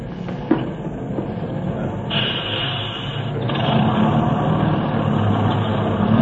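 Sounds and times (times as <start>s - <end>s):
bus engine idling at a stop: 0.0s - 6.2s
hiss: 2.1s - 3.9s.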